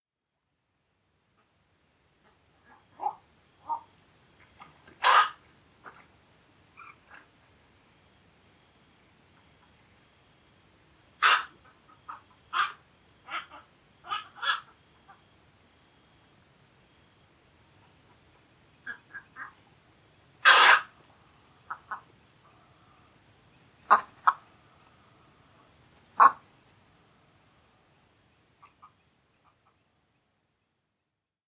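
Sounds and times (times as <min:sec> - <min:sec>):
Black-crowned Night-heron Nycticorax nycticorax calling: 0:02.3 - 0:06.0, 0:06.7 - 0:07.4, 0:11.2 - 0:15.4, 0:17.8 - 0:27.8, 0:28.4 - 0:29.9.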